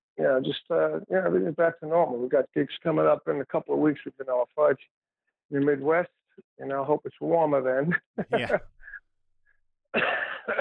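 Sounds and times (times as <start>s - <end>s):
speech: 0.2s - 8.8s, 9.9s - 10.5s
person coughing harshly: 8.4s - 8.8s.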